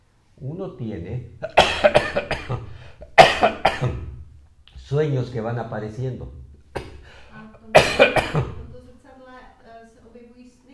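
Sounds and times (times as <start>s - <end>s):
speech: 0.4s - 2.6s, 4.9s - 6.4s
harsh coughing: 1.4s - 4.2s, 6.7s - 8.7s.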